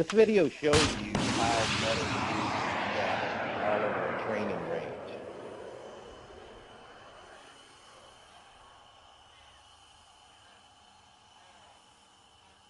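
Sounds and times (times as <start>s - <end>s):
speech: 0.0s - 2.2s
loud harsh blast of a munition explosion: 0.7s - 8.3s
long low rumbling roar of a munition explosion on a training range: 0.9s - 11.4s.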